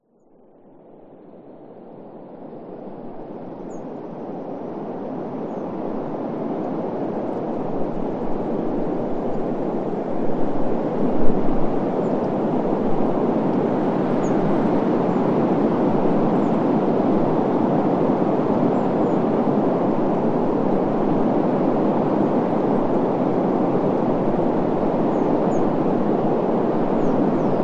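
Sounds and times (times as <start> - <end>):
strong constant blizzard wind: 0.4 - 27.6.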